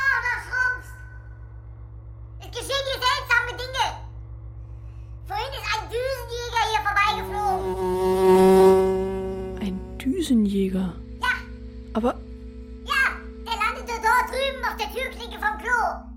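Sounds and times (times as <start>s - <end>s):
steady low hum: 0.0s - 16.1s
fly buzzing: 6.7s - 13.8s
speech: 10.2s - 11.1s, 12.0s - 12.2s.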